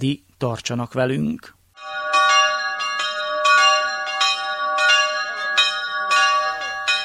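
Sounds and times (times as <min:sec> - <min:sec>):
speech: 0:00.0 - 0:01.6
several church bells pealing: 0:01.8 - 0:07.0.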